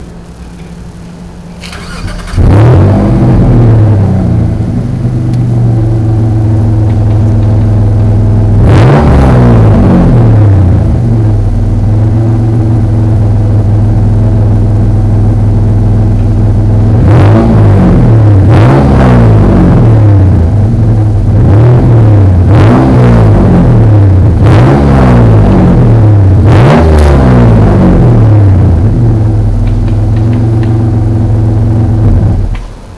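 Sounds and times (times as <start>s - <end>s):
3000GT exhaust: 0.0s - 32.9s.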